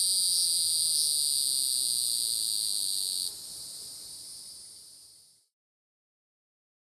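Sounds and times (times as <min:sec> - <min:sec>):
North American hieroglyphic cicada buzzing: 0:00.0 - 0:03.4.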